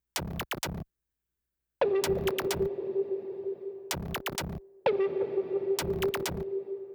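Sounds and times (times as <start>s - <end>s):
synth percussion: 1.8s - 6.9s.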